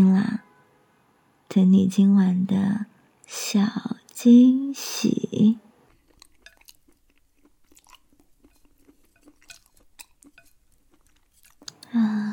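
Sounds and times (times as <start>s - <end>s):
speech: 1.5s - 5.6s
chewing grilled barbecue meat: 5.8s - 11.9s.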